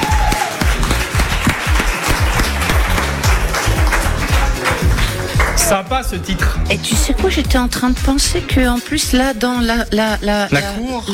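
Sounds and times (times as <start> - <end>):
crowd applauding loudly: 0.0 - 5.8
speech: 5.7 - 11.1.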